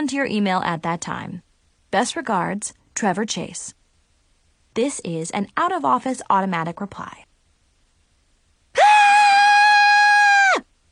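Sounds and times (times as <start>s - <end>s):
speech: 0.0s - 3.8s, 4.8s - 7.2s
person screaming at a high pitch: 8.8s - 10.6s.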